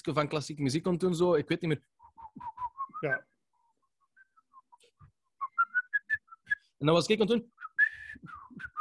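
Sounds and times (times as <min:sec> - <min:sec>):
speech: 0:00.0 - 0:03.3, 0:06.8 - 0:07.6
person whistling a short wavering melody: 0:02.0 - 0:03.4, 0:05.4 - 0:06.7, 0:07.6 - 0:08.7.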